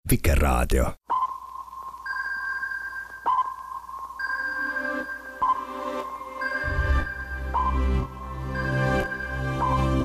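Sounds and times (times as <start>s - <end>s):
speech: 0.1s - 1.0s
sonar echo sounder pings: 1.1s - 10.0s.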